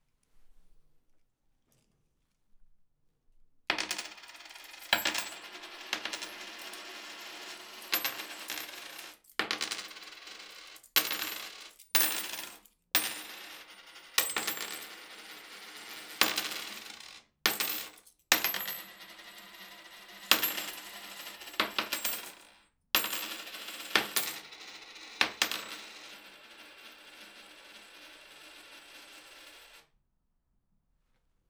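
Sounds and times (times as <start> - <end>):
small coins tossed onto a table in Angyalfold: 3.7 - 19.6, 20.2 - 29.8.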